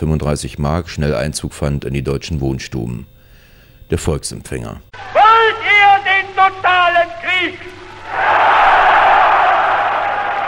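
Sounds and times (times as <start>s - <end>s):
speech: 0.0s - 3.2s, 3.9s - 5.6s, 6.4s - 7.8s
dense rally crowd roaring and cheering in a large hall: 4.9s - 10.4s.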